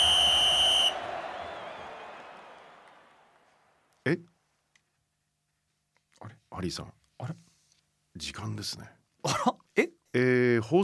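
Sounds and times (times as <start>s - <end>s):
referee whistle blast signaling match kickoff: 0.0s - 1.7s
stadium crowd roaring: 0.0s - 3.8s
speech: 4.1s - 4.3s, 6.2s - 7.4s, 8.2s - 10.8s.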